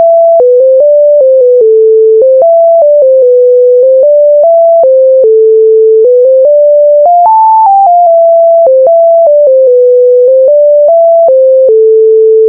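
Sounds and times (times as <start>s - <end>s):
raw sine wave game melody: 0.0s - 12.4s.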